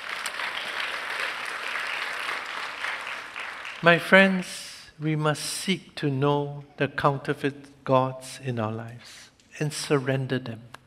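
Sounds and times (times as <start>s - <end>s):
audience applause: 0.0s - 4.4s
speech: 3.8s - 10.8s.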